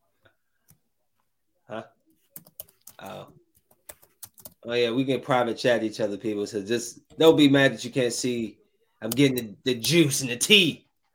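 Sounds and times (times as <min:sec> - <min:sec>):
speech: 0:01.7 - 0:02.0, 0:03.0 - 0:03.4, 0:04.6 - 0:10.8
typing a message on a computer keyboard: 0:02.4 - 0:04.6.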